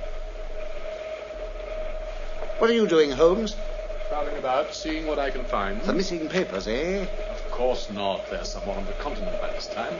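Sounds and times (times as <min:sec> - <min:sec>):
sustained high whine over underground train: 0:00.0 - 0:09.9
underground train rumbling past: 0:00.0 - 0:09.9
speech: 0:02.6 - 0:09.9.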